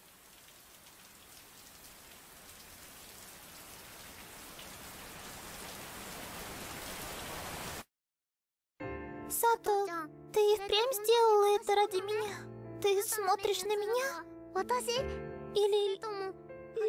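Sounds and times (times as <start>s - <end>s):
heavy rain: 0.0s - 7.8s
speech: 10.5s - 16.2s.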